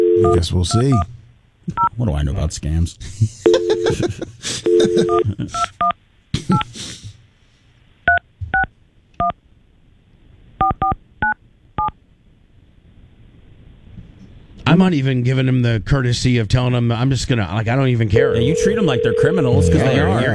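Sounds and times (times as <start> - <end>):
faint noise: 0.0 - 20.3
speech: 0.2 - 5.9, 6.5 - 7.0, 14.8 - 20.3
laughter: 3.0 - 5.8
telephone keypad dialing tones: 4.7 - 5.2, 18.3 - 20.0.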